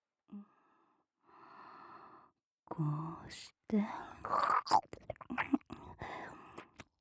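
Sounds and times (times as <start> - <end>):
speech: 2.7 - 5.5
wet mouth sounds of chewing with nothing in the mouth: 4.3 - 5.7.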